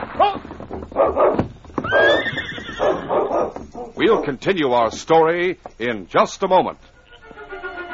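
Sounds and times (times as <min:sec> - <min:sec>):
horse hoofbeats thudding: 0:00.3 - 0:05.1
horse neighing: 0:01.8 - 0:03.3
speech: 0:04.0 - 0:06.9.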